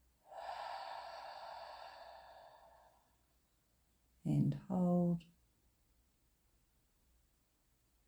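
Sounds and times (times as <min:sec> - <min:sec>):
slow exhalation during breathing exercise: 0:00.3 - 0:03.2
speech: 0:04.3 - 0:05.4.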